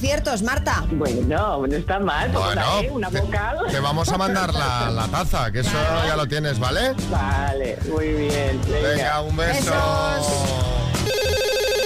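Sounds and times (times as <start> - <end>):
speech: 0.0 - 10.8
telephone ringing with electronic trill: 11.0 - 11.8.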